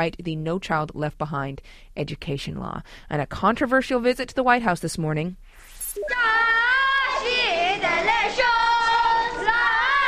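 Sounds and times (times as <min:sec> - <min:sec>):
speech: 0:00.0 - 0:06.6
children cheering and shouting in welcome: 0:06.0 - 0:10.0.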